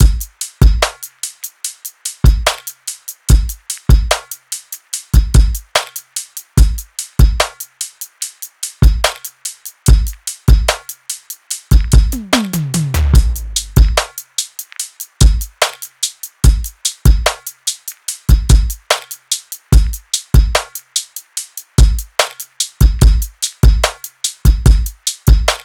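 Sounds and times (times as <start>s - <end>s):
full drum loops: 0.0s - 25.6s.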